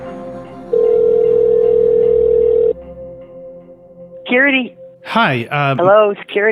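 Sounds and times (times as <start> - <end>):
telephone ringback tone electronic buzz through handset: 0.7 - 2.7
speech: 4.3 - 6.5.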